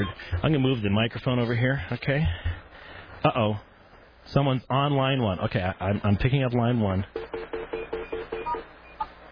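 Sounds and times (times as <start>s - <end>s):
speech: 0.0s - 2.5s, 3.2s - 7.2s
office phone keypad tones while changing call forwarding: 7.2s - 9.1s.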